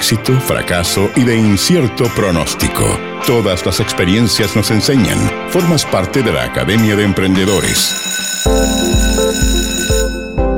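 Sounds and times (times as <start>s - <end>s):
speech: 0.1s - 8.8s
loud electric school bell ringing with harsh buzzing metallic tone: 7.4s - 10.5s.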